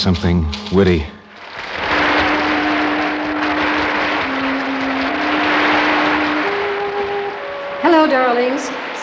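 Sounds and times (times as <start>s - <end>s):
speech: 0.0s - 1.2s, 8.1s - 9.0s
crowd applause: 1.3s - 9.0s
sustained low musical tone: 2.0s - 8.4s.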